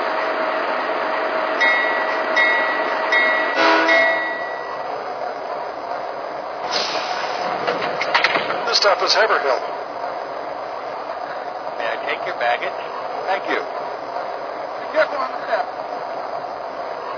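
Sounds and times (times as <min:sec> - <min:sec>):
passenger train rumbling along the rails: 0:00.0 - 0:17.1
speech: 0:08.9 - 0:09.8.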